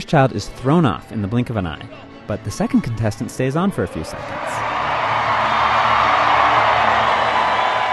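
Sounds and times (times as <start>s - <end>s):
speech: 0.0s - 4.7s
large crowd roaring and cheering at a rodeo arena: 3.9s - 7.9s.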